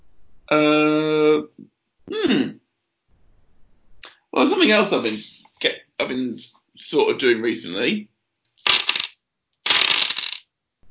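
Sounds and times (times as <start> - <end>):
speech: 0.5 - 2.5, 4.4 - 8.1
dice clattering and rattling across a hard surface: 8.6 - 10.4.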